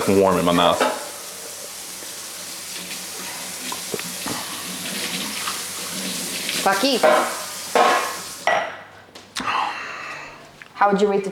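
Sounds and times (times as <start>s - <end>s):
speech: 0.0s - 0.9s, 6.6s - 7.4s, 10.8s - 11.3s
tap water running while washing dishes: 0.0s - 8.8s
dishes clinking and knocking: 0.7s - 1.3s, 6.9s - 8.9s.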